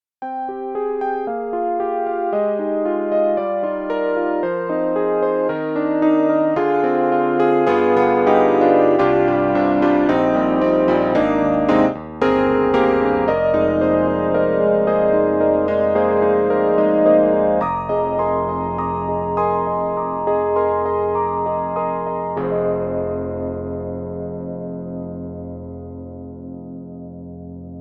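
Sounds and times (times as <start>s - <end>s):
Yamaha CP80 electric piano with rich chorus effect: 0.2s - 27.7s.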